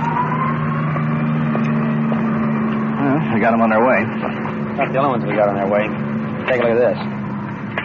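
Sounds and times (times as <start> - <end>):
ambulance engine humming with a rising whine: 0.0 - 7.8
traffic road noise: 0.0 - 7.8
speech: 3.4 - 7.2.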